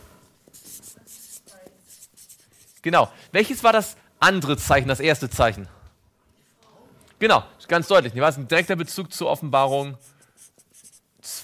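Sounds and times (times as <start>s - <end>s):
marker squeaking and scratching across a whiteboard: 0.4s - 2.8s, 9.6s - 11.4s
speech: 2.8s - 5.8s, 7.2s - 10.1s.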